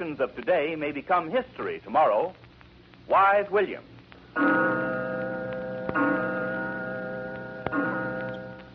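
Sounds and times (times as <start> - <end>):
speech: 0.0 - 2.4, 3.1 - 5.0
clock ticking: 4.4 - 8.7.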